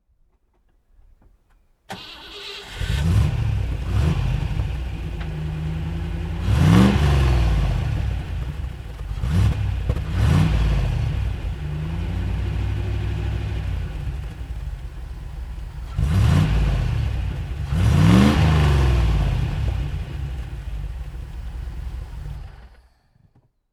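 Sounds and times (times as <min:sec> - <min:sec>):
1983 TVR 350i car engine: 0:01.9 - 0:23.4.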